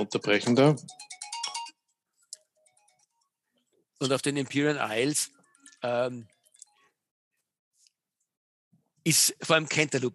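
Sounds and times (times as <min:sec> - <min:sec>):
speech: 0:00.0 - 0:01.1, 0:04.0 - 0:06.4, 0:09.0 - 0:10.1
mobile phone ringing with a rapid electronic trill: 0:00.9 - 0:01.9.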